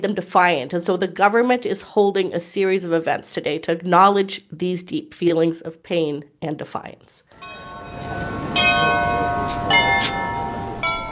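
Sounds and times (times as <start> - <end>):
speech: 0.0 - 9.0
bells of a cathedral in Ukraine ringing in a steady peal: 7.3 - 11.1.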